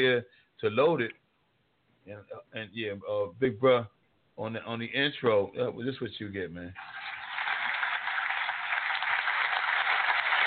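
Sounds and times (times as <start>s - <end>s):
speech: 0.0s - 1.2s, 2.1s - 7.2s
crowd applauding with many hands clapping: 6.8s - 10.4s.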